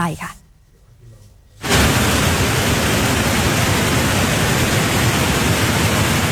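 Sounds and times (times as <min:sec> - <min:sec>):
speech: 0:00.0 - 0:00.4
roar of turbid fast-flowing flooded waterfall: 0:01.6 - 0:06.3.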